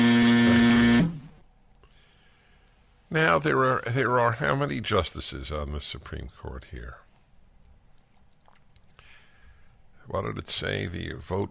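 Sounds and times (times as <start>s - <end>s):
loud harsh game show buzzer: 0.0s - 1.3s
speech: 3.1s - 7.0s, 10.1s - 11.4s.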